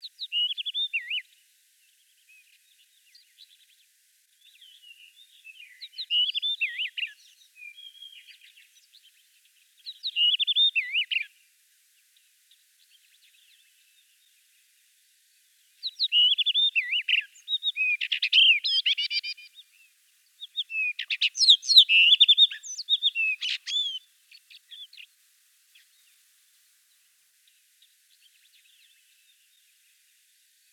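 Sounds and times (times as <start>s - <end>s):
rufous-tailed rock thrush voice: 5.8s - 8.3s, 10.0s - 11.3s, 15.8s - 19.6s, 20.4s - 25.1s.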